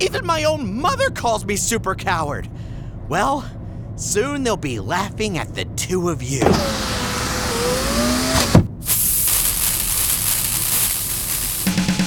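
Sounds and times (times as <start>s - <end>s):
speech: 0.0s - 6.9s
car engine revving as the car picks up speed: 5.2s - 11.6s
loud sustained rushing hiss: 6.4s - 11.9s.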